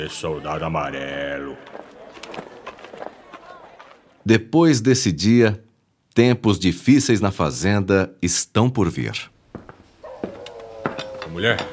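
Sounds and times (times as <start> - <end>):
speech: 0.0 - 1.9, 4.2 - 5.6, 6.2 - 9.3, 11.4 - 11.7
sick female dog whimpering: 10.0 - 11.7.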